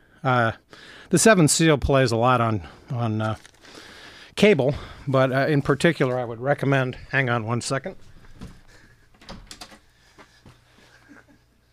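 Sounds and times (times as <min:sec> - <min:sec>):
speech: 0:00.2 - 0:08.6
door knocks and shuffling as it opens: 0:08.0 - 0:09.9
locked door latch clicking and rattling: 0:09.2 - 0:09.9.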